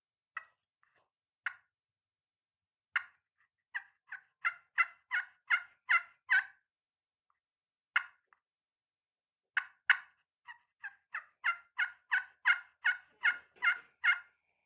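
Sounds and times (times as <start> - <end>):
turkey hunting call played with a striker making soft clucks: 3.0 - 6.6, 8.0 - 8.3, 9.6 - 14.4
turkey hunting call played with a striker making tree yelps: 3.7 - 6.6, 9.6 - 14.3.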